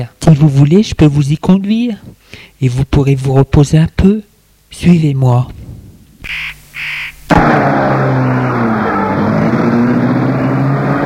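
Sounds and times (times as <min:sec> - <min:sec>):
speech: 0:00.0 - 0:05.6
car engine starting and humming while driving slowly along a private path: 0:06.1 - 0:11.0
bird cawing: 0:06.2 - 0:07.3.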